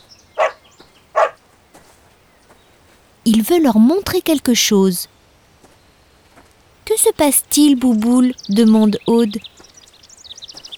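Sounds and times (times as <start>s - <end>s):
dog barking in short sharp barks: 0.4s - 0.6s, 1.2s - 1.4s
speech: 3.3s - 5.2s, 7.2s - 9.5s.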